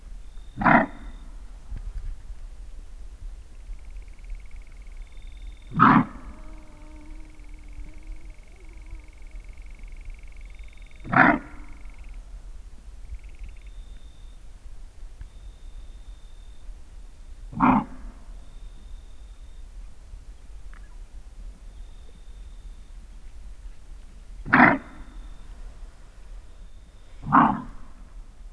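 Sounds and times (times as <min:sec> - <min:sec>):
female greater kudu Tragelaphus strepsiceros alarm barking: 0:00.5 - 0:01.3, 0:04.2 - 0:12.2, 0:17.6 - 0:18.0, 0:24.5 - 0:25.4, 0:27.1 - 0:27.9.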